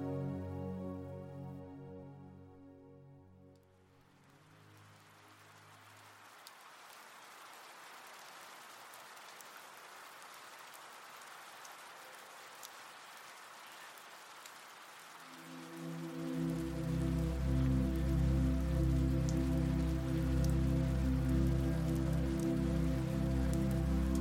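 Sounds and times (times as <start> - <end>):
low sustained musical drone: 0.0 - 5.5, 15.3 - 24.2
gentle rain falling outside a window on a windless morning: 3.5 - 24.2.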